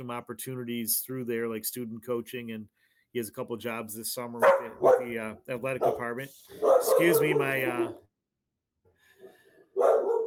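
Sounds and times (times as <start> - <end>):
speech: 0.0 - 8.0
dog barking: 4.4 - 5.2, 5.8 - 8.0, 9.7 - 10.2.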